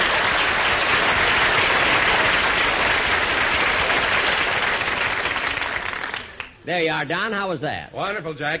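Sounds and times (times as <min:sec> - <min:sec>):
large studio audience applause: 0:00.0 - 0:06.6
speech: 0:06.7 - 0:08.5.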